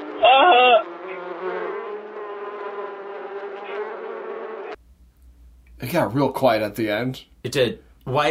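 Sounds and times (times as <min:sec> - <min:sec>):
bees buzzing: 0:00.0 - 0:04.8
speech: 0:05.8 - 0:08.3.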